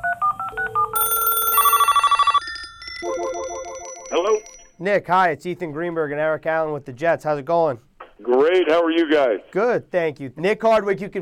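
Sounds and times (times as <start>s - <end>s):
telephone keypad tones: 0.0s - 4.7s
speech: 4.1s - 11.2s.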